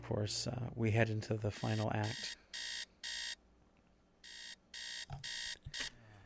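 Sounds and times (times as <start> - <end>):
speech: 0.1 - 2.4
harsh electronic buzzer blaring: 1.6 - 3.4, 4.2 - 5.9.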